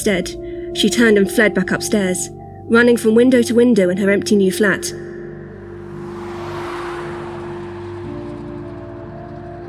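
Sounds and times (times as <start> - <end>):
speech: 0.0 - 5.1
car passing with engine drone and tyre hiss: 4.8 - 9.6
street traffic hum: 4.8 - 9.6.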